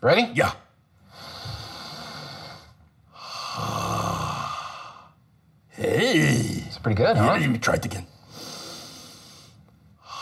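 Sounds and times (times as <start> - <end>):
speech: 0.0 - 0.6, 5.8 - 8.1
deep belly breath in and out: 1.0 - 5.3, 8.1 - 10.2.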